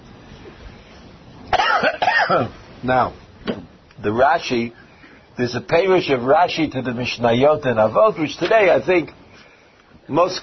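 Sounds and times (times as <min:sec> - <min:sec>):
faint hum: 0:00.0 - 0:10.4
person coughing: 0:01.5 - 0:02.6
speech: 0:01.8 - 0:03.2, 0:04.0 - 0:04.8, 0:05.4 - 0:09.2, 0:10.1 - 0:10.4.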